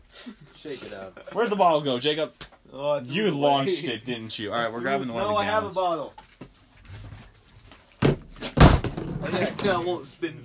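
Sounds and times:
speech: 0:00.2 - 0:06.2, 0:09.2 - 0:10.4
objects slammed onto a table: 0:08.0 - 0:09.3.

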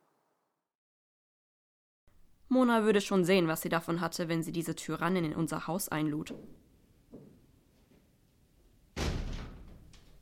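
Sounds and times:
speech: 0:02.5 - 0:06.6
door shutting with a loud thud: 0:09.0 - 0:10.2.

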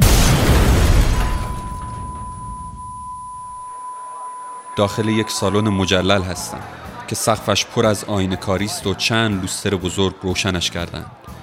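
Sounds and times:
hand grenade exploding beside a train in wartime: 0:00.0 - 0:03.1
speech: 0:04.8 - 0:11.4.

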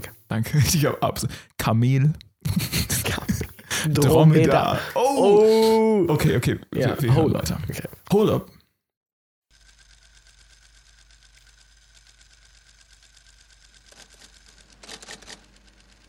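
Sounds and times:
speech: 0:00.3 - 0:03.0, 0:03.8 - 0:08.6
laughter: 0:02.4 - 0:07.8
man typing on a typewriter: 0:09.6 - 0:16.0.

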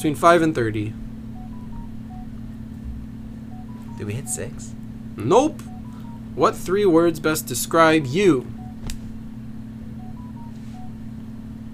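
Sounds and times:
speech: 0:00.0 - 0:01.0, 0:04.0 - 0:05.7, 0:06.4 - 0:08.6
steady low droning hum: 0:00.0 - 0:11.7
phone ringing with soft electronic beeps in a simple melody: 0:01.3 - 0:02.4, 0:03.4 - 0:04.8, 0:05.6 - 0:06.7, 0:10.0 - 0:11.1.

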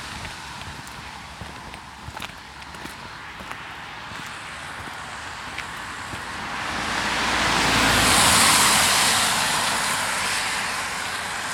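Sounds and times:
cars hissing past on wet road: 0:04.2 - 0:11.5.

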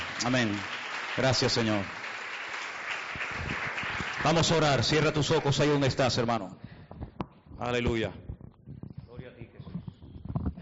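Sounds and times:
audience applauding: 0:00.0 - 0:06.3
speech: 0:00.2 - 0:02.0, 0:04.2 - 0:06.6, 0:07.6 - 0:08.2.

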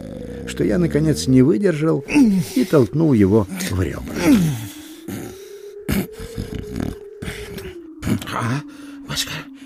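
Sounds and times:
voice imitating loud snoring: 0:00.0 - 0:01.4, 0:03.6 - 0:08.4
speech: 0:00.5 - 0:04.6, 0:08.4 - 0:09.4.

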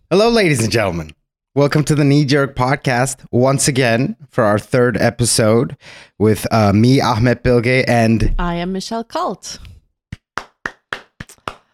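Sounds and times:
speech: 0:00.1 - 0:09.7
single person clapping slowly and sarcastically: 0:10.1 - 0:11.7.

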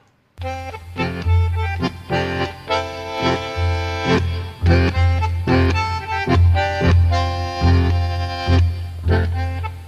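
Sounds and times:
tango recording with bass, piano and strings: 0:00.4 - 0:09.8.

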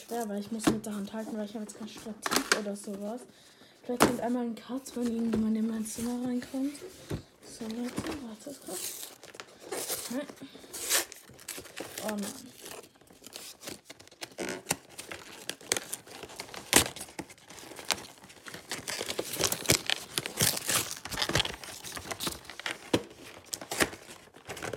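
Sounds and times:
speech: 0:00.1 - 0:09.1, 0:10.1 - 0:10.6, 0:12.0 - 0:12.6
packaging being torn open by hand: 0:08.6 - 0:24.7.

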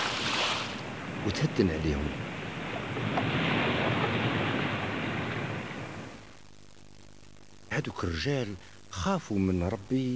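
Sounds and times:
sea waves and surf: 0:00.0 - 0:06.3
gusty wind-like hiss: 0:00.0 - 0:06.4
speech: 0:01.2 - 0:02.3, 0:03.0 - 0:03.6, 0:07.8 - 0:10.1.

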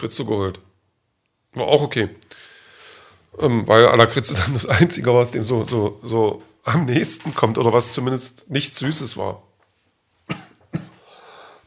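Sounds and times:
speech: 0:00.0 - 0:00.7, 0:01.5 - 0:02.5, 0:03.3 - 0:09.5
person coughing: 0:10.3 - 0:11.2.

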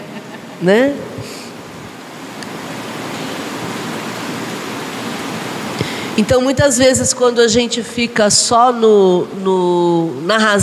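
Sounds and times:
speech: 0:00.6 - 0:01.4, 0:06.2 - 0:10.6
rain falling: 0:01.6 - 0:06.6.

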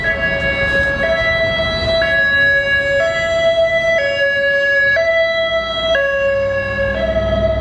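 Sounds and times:
low rumble of road traffic: 0:00.0 - 0:07.5
two-tone ambulance siren: 0:00.0 - 0:07.5.

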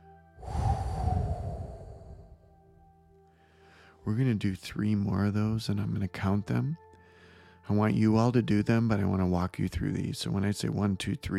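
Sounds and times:
long breathy exhale after a held deep breath: 0:00.4 - 0:02.6, 0:03.4 - 0:04.0
speech: 0:04.1 - 0:06.8, 0:07.7 - 0:11.3.

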